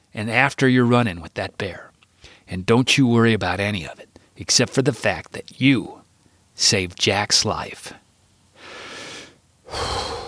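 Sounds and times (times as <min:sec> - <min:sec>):
speech: 0:00.1 - 0:06.0, 0:06.6 - 0:08.0, 0:09.7 - 0:10.2
man drawing a deep breath: 0:02.2 - 0:02.5, 0:08.6 - 0:10.2
man blowing a deep breath out through his lips: 0:08.6 - 0:10.2.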